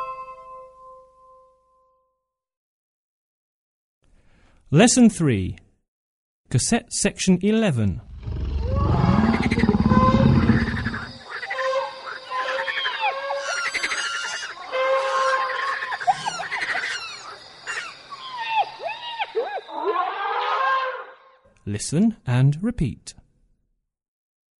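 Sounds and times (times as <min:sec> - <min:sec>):
speech: 0:04.7 - 0:05.7, 0:06.5 - 0:08.1, 0:21.9 - 0:23.3
monkey chattering and screeching calls: 0:08.1 - 0:20.5.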